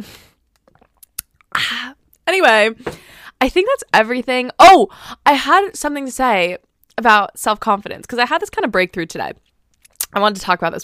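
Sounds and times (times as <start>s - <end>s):
person sipping water from a tumbler: 0.3s - 2.2s
swallowing water: 0.5s - 1.5s
speech: 2.3s - 9.5s, 10.1s - 10.8s.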